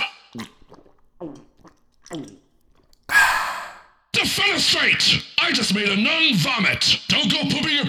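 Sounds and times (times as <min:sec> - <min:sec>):
speech: 0:00.4 - 0:00.6, 0:02.1 - 0:02.4, 0:04.6 - 0:07.8
person inhaling gas from a can: 0:00.4 - 0:04.0.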